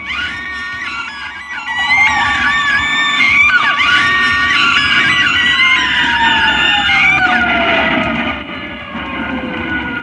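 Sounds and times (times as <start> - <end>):
ambulance siren passing with downward sliding tone: 0.0 - 10.0
many people screaming and wailing in a chaotic crowd: 0.0 - 10.0.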